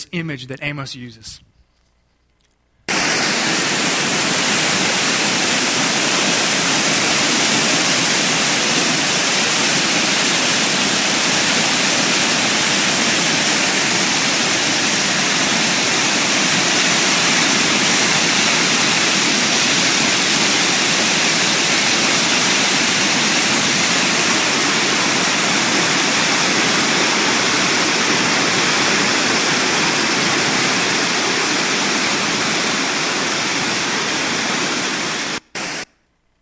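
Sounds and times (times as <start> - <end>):
speech: 0.1 - 1.5
powerful overflowing river with rushing white water: 2.9 - 35.4.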